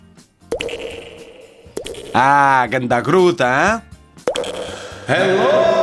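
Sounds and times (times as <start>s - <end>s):
water drops plinking into a pool inside a cave: 0.5s - 2.4s, 4.2s - 5.1s
speech: 2.1s - 3.9s, 5.1s - 5.7s.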